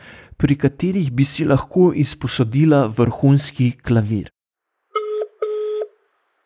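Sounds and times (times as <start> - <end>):
speech: 0.4 - 4.4
electronic telephone keypad beeps while dialing: 5.0 - 5.9.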